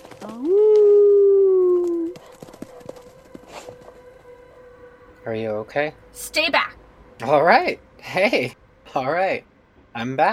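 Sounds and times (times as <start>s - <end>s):
speech: 0.3s - 0.6s, 5.3s - 10.3s
dog howling: 0.3s - 5.0s.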